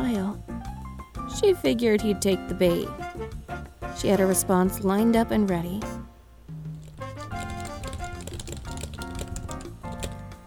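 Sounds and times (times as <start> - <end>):
sustained melodic music bed: 0.0 - 10.4
speech: 1.4 - 3.2, 4.0 - 5.9
rapid keyboard typing: 6.8 - 10.4.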